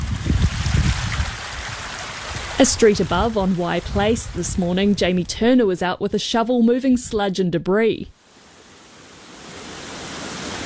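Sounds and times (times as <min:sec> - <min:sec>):
floodwater gushing down a bank behind a house: 0:00.0 - 0:05.8, 0:08.3 - 0:10.6
speech: 0:02.6 - 0:08.2.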